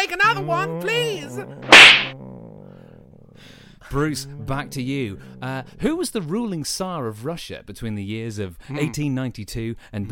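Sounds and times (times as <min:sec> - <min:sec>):
speech: 0:00.0 - 0:02.1, 0:03.9 - 0:10.1
single sharp loud slap: 0:01.6 - 0:02.1.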